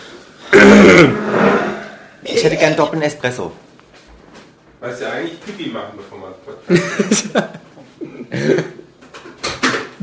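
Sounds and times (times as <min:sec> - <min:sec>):
loud throat clearing with raspy cough-like burst: 0:00.5 - 0:01.3, 0:08.0 - 0:08.8
speech: 0:00.9 - 0:01.2, 0:02.4 - 0:03.7, 0:04.8 - 0:07.6.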